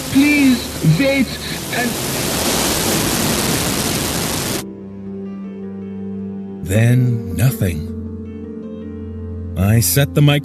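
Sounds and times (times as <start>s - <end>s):
man speaking excitedly in German: 0.0s - 2.2s, 6.6s - 7.9s
loud dense radio static: 0.0s - 4.6s
speech: 0.2s - 2.4s, 6.7s - 8.0s, 9.6s - 10.4s.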